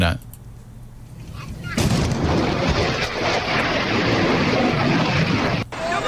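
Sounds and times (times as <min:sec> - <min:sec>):
F-16 jet breaking the sound barrier: 0:01.3 - 0:06.0.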